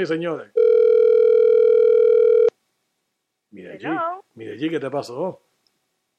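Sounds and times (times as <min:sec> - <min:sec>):
speech: 0:00.0 - 0:00.6, 0:03.5 - 0:05.5
telephone dial tone after dropped call: 0:00.6 - 0:02.5.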